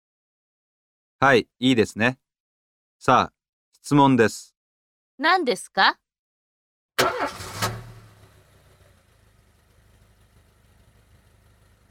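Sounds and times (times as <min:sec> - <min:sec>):
speech: 0:01.2 - 0:02.2, 0:03.0 - 0:04.5, 0:05.2 - 0:06.0, 0:07.0 - 0:07.5
car: 0:07.0 - 0:11.8.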